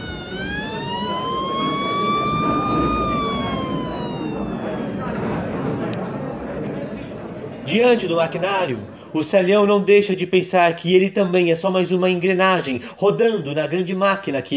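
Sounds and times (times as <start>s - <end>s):
factory siren wailing: 0.0s - 6.6s
murmuring voices: 0.0s - 9.2s
speech: 7.7s - 14.5s.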